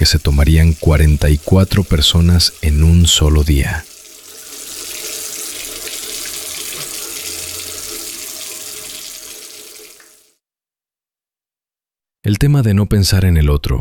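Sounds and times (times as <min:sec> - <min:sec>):
speech: 0:00.0 - 0:03.9, 0:12.3 - 0:13.7
water running from a tap: 0:00.0 - 0:10.4.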